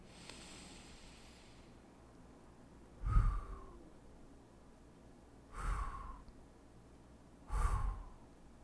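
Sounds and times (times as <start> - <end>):
slow breaths in and out during a guided breathing exercise: 0.0 - 1.9, 3.0 - 3.8, 5.5 - 6.3, 7.5 - 8.2.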